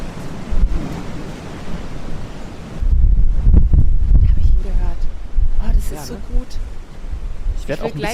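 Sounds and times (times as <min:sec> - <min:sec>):
Atlantic Ocean waves heard from a rocking ship deck: 0:00.0 - 0:08.1
strong wind buffeting the microphone on a ship deck: 0:00.0 - 0:08.1
speech: 0:06.0 - 0:06.7, 0:07.7 - 0:08.1.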